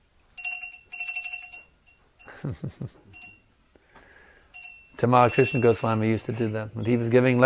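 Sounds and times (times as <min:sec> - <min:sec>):
small bright bell ringing: 0:00.4 - 0:03.8, 0:04.5 - 0:06.4
speech: 0:02.4 - 0:03.1, 0:05.0 - 0:07.4.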